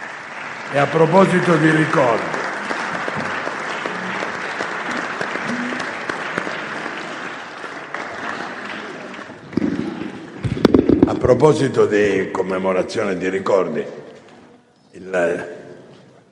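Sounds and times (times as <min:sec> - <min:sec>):
large audience applauding in remembrance of a tragic event: 0:00.0 - 0:11.5
speech: 0:00.7 - 0:02.3, 0:11.4 - 0:14.0.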